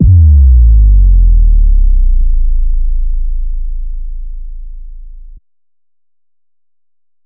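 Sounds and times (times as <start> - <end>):
sub drop: 0.0 - 5.4.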